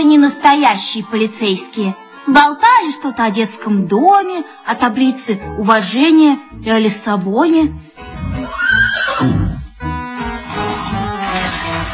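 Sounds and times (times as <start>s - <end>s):
speech: 0.0s - 7.9s, 9.2s - 9.4s
horse neighing: 8.3s - 9.7s.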